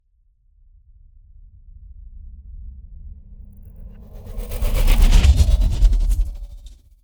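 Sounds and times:
sci-fi movement transition sound: 3.9s - 6.8s.

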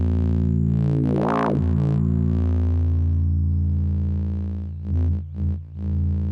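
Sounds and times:
bass guitar E note: 0.1s - 6.2s.

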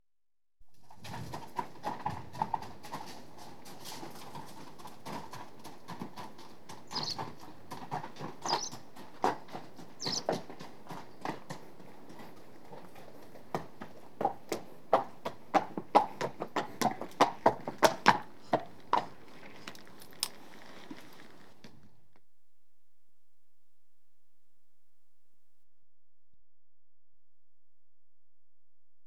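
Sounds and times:
one horse hooves walking: 0.7s - 22.2s.

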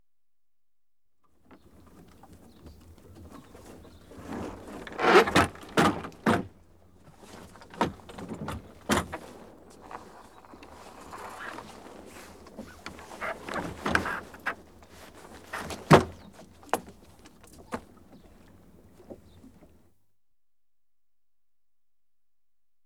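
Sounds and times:
sailing dinghy sail being lowered: 1.5s - 6.5s, 7.1s - 17.9s.

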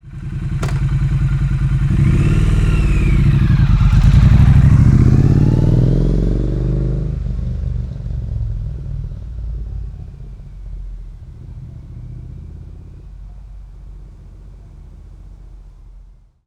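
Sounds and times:
900 cc Triumph Street Twin motorcycle driving away left to right: 0.1s - 16.4s
Triumph Street Twin motorcycle gear shift: 0.6s - 1.2s.

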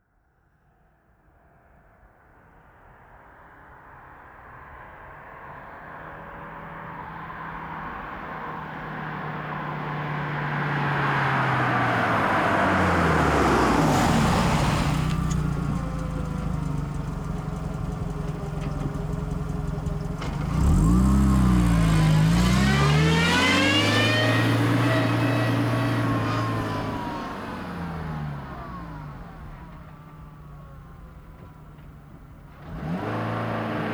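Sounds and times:
Volkswagen Golf V 1.6 FSI stopping, reversing and driving away: 8.8s - 33.9s.

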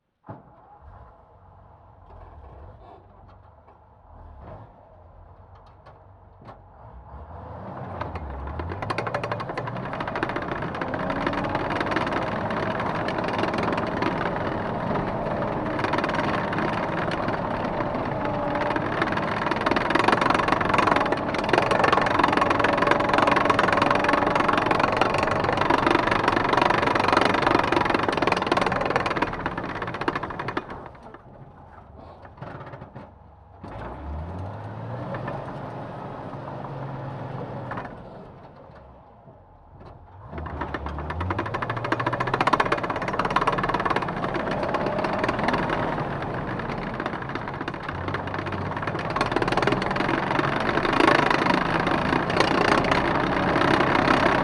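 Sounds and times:
1942 M10 tank destroyer engine starting, driving and stopping, onboard: 0.2s - 54.4s
1942 M10 tank destroyer tracks: 7.8s - 34.2s, 39.7s - 54.4s.

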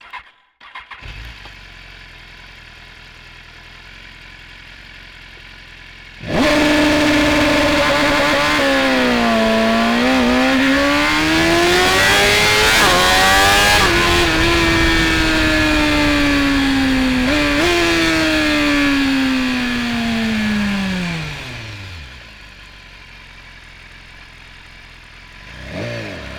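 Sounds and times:
2015 BMW S1000RR motorcycle engine starting: 0.0s - 4.2s, 6.2s - 26.3s
2015 BMW S1000RR 999cc four-stroke motorcycle engine accelerating onboard: 1.0s - 26.3s
2015 BMW S1000RR motorcycle gearshifts: 6.3s - 22.2s.

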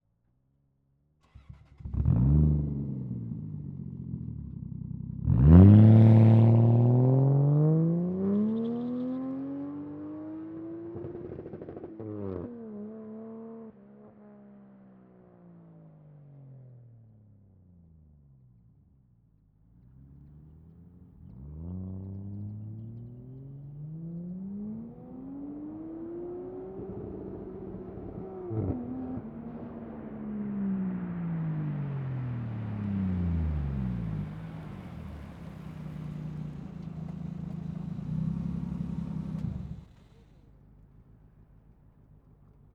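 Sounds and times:
Toyota Chaser Mark 2 engine starting: 1.2s - 3.4s, 20.0s - 42.6s
Toyota Chaser Mark 2 approaching very fast: 1.2s - 15.6s, 19.7s - 42.7s
Toyota Chaser Mark 2 driving away very fast: 5.3s - 11.2s, 20.0s - 40.4s
Toyota Chaser Mark 2 engine idling: 30.9s - 42.7s.

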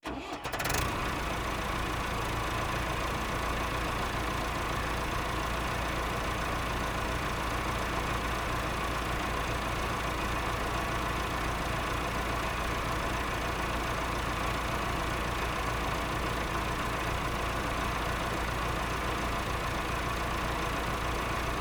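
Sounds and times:
Massey-Ferguson 3060E tractor engine idling, revving and shutting down: 0.0s - 21.5s.

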